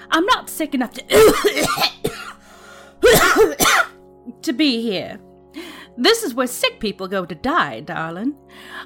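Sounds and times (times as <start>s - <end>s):
speech: 0.1s - 2.0s, 3.1s - 3.7s, 4.4s - 5.3s, 6.0s - 8.8s
woman having a coughing fit: 1.0s - 2.4s, 3.0s - 4.0s.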